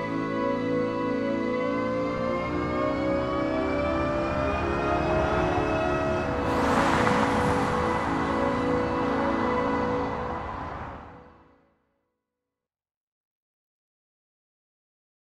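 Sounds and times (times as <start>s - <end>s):
reversed singing: 0.2s - 11.3s.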